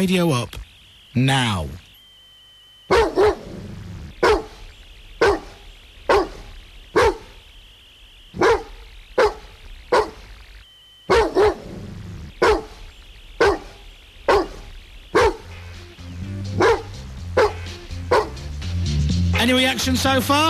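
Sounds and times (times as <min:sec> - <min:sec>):
speech: 0:00.0 - 0:00.6, 0:01.2 - 0:01.8, 0:19.5 - 0:20.4
dog barking: 0:02.9 - 0:04.6, 0:05.2 - 0:07.4, 0:08.4 - 0:10.2, 0:11.1 - 0:11.7, 0:12.3 - 0:12.8, 0:13.4 - 0:15.5, 0:16.6 - 0:18.4.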